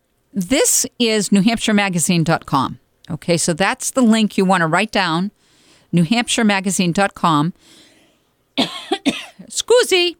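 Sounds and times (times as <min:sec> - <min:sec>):
speech: 0:00.3 - 0:07.8, 0:08.6 - 0:10.1
person coughing sharply: 0:08.6 - 0:09.5.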